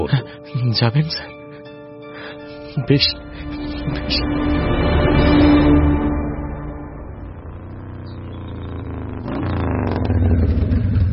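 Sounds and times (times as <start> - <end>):
speech: 0.1 - 1.3, 2.8 - 3.3, 3.9 - 5.5
motorbike engine rumbling as the bike arrives: 3.2 - 11.1.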